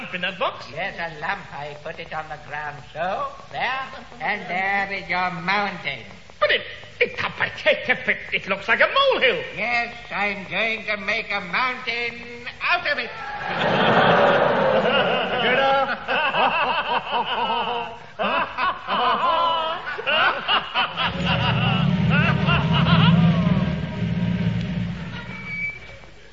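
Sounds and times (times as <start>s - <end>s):
speech: 0.1s - 14.1s, 16.9s - 19.4s
audience laughter and snickering: 13.2s - 25.5s
heavy lorry engine rumbling: 21.1s - 25.8s.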